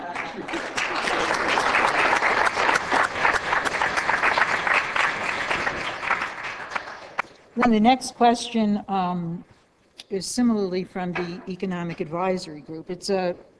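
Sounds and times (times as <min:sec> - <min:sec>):
audience applause for a speaker's answer: 0:00.0 - 0:07.2
speech: 0:07.6 - 0:13.5.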